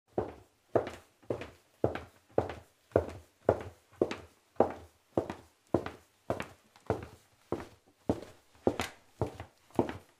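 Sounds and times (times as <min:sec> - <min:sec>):
footsteps: 0:00.2 - 0:10.1.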